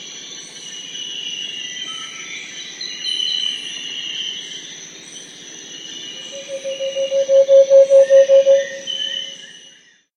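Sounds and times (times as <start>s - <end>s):
steady high insect drone: 5.6s - 9.2s
variegated antpitta song in South America: 6.3s - 9.2s.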